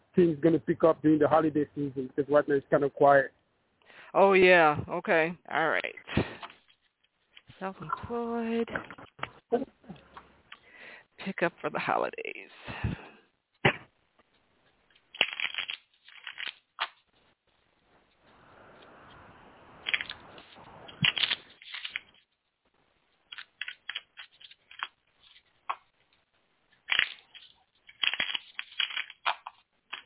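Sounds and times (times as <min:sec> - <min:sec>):
speech: 0:00.2 - 0:03.4, 0:04.1 - 0:06.2, 0:07.6 - 0:10.0, 0:11.2 - 0:13.0
tarot cards being shuffled and cut: 0:15.1 - 0:17.1, 0:19.8 - 0:22.3, 0:23.3 - 0:25.9, 0:26.8 - 0:30.0.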